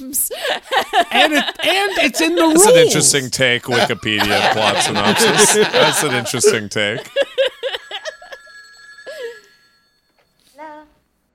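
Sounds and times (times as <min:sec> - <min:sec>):
speech: 0:00.0 - 0:07.4
laughter: 0:00.3 - 0:08.5
telephone ringing with an electronic trill: 0:04.0 - 0:10.6.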